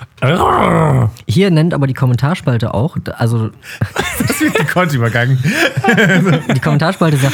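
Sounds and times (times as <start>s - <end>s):
voice imitating an elephant's low rumbling call: 0.0s - 1.2s
speech: 0.2s - 7.3s
laughter: 3.7s - 7.3s.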